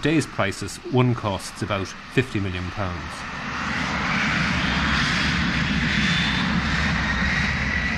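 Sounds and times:
speech: 0.0s - 3.7s
Boeing 747 jumbo jet engines roaring: 0.0s - 7.9s.

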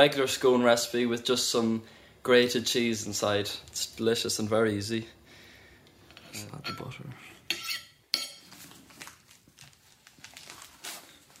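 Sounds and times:
speech: 0.0s - 5.2s, 6.3s - 7.3s
dishes and cutlery clinking: 6.1s - 8.6s.

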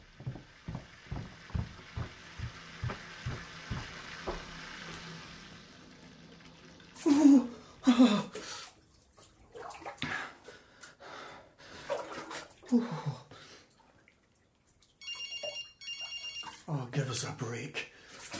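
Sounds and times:
water splashing and rushing into a bathtub: 0.0s - 17.3s, 17.9s - 18.3s
phone ringing: 15.0s - 16.7s.

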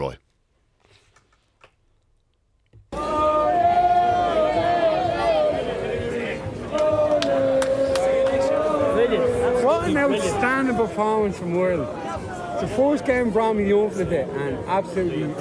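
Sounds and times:
speech: 0.0s - 0.2s, 10.1s - 12.0s, 12.6s - 15.3s
football stadium crowd chanting: 2.9s - 10.9s
football stadium crowd roaring and singing after the match: 2.9s - 15.3s.

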